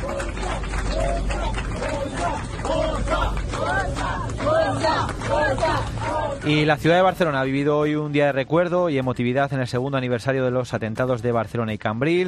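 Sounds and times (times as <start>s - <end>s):
migrants shouting and calling while disembarking: 0.0s - 6.4s
crowd of migrants babbling while disembarking from a rescue ship: 0.0s - 7.1s
speech: 6.4s - 12.2s.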